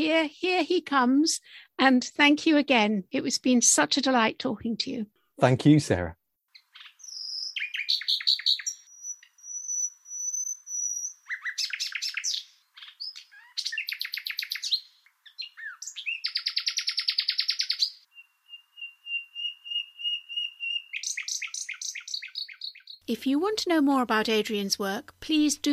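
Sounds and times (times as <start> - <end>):
speech: 0.0 - 6.2, 23.1 - 25.7
nightingale singing: 6.5 - 23.1.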